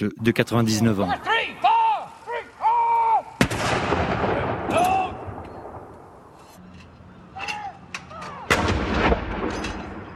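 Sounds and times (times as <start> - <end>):
speech: 0.0 - 1.7
ceremonial cannon salute blasts: 3.4 - 6.1, 8.5 - 10.1.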